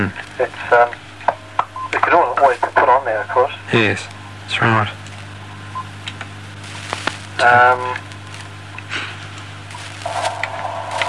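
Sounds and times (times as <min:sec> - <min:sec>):
speech: 0:00.0 - 0:01.0, 0:03.1 - 0:05.0, 0:07.4 - 0:08.0
low electrical hum: 0:00.0 - 0:11.0
radio static hissing and crackling: 0:00.0 - 0:11.0.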